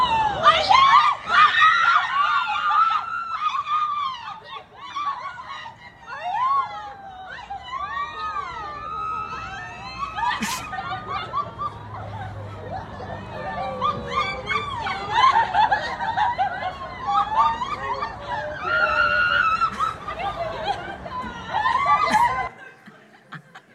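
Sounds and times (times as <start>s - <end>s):
friends screaming excitedly at a pregnancy announcement: 0.0s - 22.6s
friends laughing: 0.0s - 23.7s.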